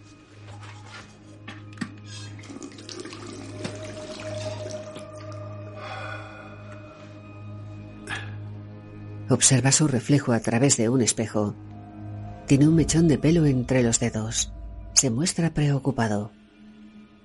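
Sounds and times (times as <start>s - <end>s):
tap water running in a bathroom: 2.2s - 5.4s
speech: 9.3s - 11.7s, 12.5s - 16.4s.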